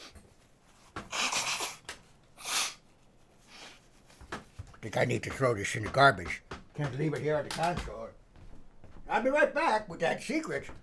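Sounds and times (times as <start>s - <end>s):
person blowing nose: 1.0s - 3.9s
speech: 4.8s - 8.0s, 9.2s - 10.8s.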